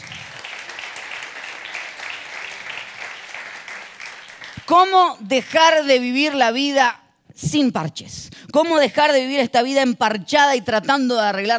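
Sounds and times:
large crowd applauding: 0:00.0 - 0:04.7
speech: 0:04.7 - 0:11.5.

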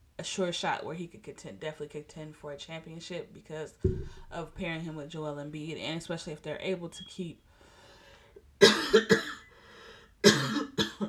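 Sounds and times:
speech: 0:00.2 - 0:07.5, 0:09.0 - 0:09.2
person harsh coughing fit: 0:08.6 - 0:09.5, 0:10.2 - 0:11.0.

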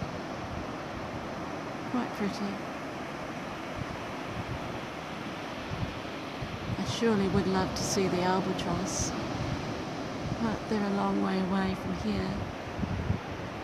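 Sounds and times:
gusty wind: 0:00.0 - 0:13.6
ocean waves breaking on shore: 0:00.0 - 0:13.6
speech: 0:01.9 - 0:02.7, 0:07.0 - 0:09.2, 0:10.4 - 0:12.6.

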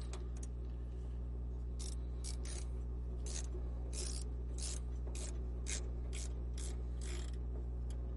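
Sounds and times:
low hum: 0:00.0 - 0:08.1
ratcheting clicks of an arthrodesis screw being tightened with very high torque: 0:01.8 - 0:08.0.

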